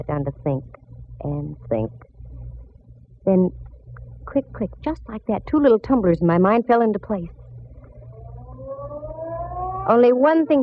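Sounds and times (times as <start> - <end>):
speech: 0.0 - 2.1, 3.2 - 3.6, 4.3 - 7.4, 9.8 - 10.6
low rumbling background: 0.0 - 10.6
ferry building siren in downtown San Francisco sounding the hour: 7.8 - 10.6.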